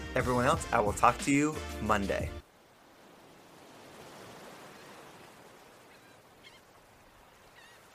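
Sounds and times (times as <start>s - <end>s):
speech: 0.2s - 2.4s
ocean waves washing onto a beach: 2.5s - 7.9s
short honking bird calls: 5.8s - 7.9s.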